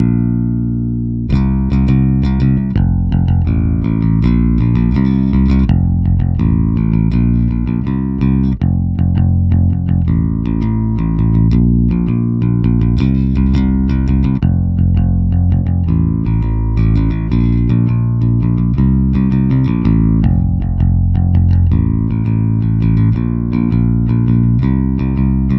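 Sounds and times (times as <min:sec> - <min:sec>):
electric bass bypassed: 0:00.0 - 0:25.5.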